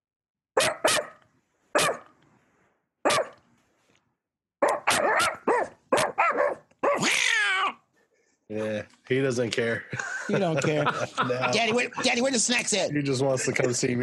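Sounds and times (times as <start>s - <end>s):
dog barking: 0.6s - 2.1s, 3.0s - 3.4s, 4.6s - 7.8s
dog howling yelp: 4.7s - 7.8s
speech: 8.5s - 14.0s
laughter: 9.7s - 14.0s.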